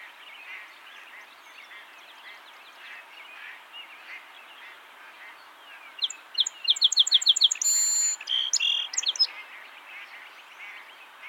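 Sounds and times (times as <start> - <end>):
song sparrow Melospiza melodia singing sharp notes buzz and trilled phrases: 6.0 - 9.3.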